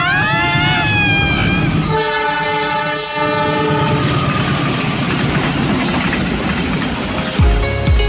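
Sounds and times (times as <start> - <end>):
train horn blaring at a level crossing: 0.0 - 5.0
train wagons roaring and rattling on the rails: 0.0 - 8.0.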